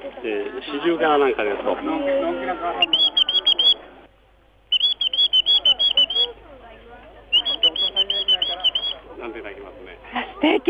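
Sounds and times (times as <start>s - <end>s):
speech: 0.2s - 3.2s
small whistle imitating a Japanese bush warbler call: 2.8s - 3.8s, 4.7s - 6.3s, 7.4s - 9.0s.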